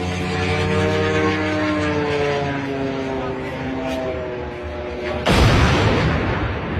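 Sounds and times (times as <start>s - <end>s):
drone buzzing harmonic engine whine: 0.0s - 6.7s
drone crashing into a huge construction crane near a refinery: 5.3s - 6.7s.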